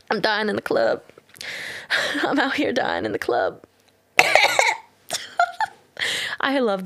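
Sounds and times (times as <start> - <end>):
speech: 0.1 - 3.7, 6.0 - 6.8
person coughing into a microphone: 4.2 - 5.6.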